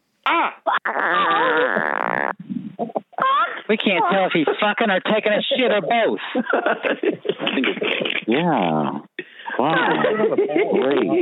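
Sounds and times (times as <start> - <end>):
speech: 0.3 - 11.2
fart sound effect: 0.8 - 3.0
laughter: 3.9 - 8.5, 9.4 - 11.2.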